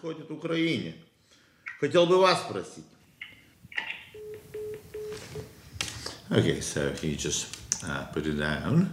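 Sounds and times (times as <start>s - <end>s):
speech: 0.0s - 1.1s, 1.8s - 3.0s, 6.3s - 8.9s
low beeps of iPhone call hung up: 4.1s - 5.5s.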